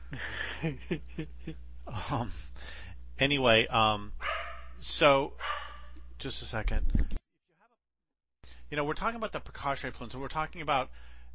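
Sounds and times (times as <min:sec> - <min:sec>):
speech: 0:00.6 - 0:05.6, 0:06.2 - 0:07.2, 0:08.7 - 0:11.1
guard dogs barking at an airplane: 0:04.2 - 0:04.8, 0:05.4 - 0:06.1.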